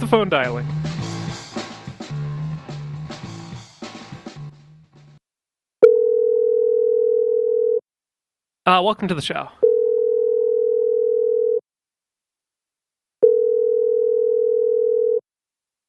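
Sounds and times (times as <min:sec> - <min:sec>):
speech: 0:00.0 - 0:00.8, 0:08.7 - 0:09.7
single-pitched telephone tone as a call is placed: 0:05.8 - 0:07.8, 0:09.6 - 0:11.6, 0:13.2 - 0:15.2.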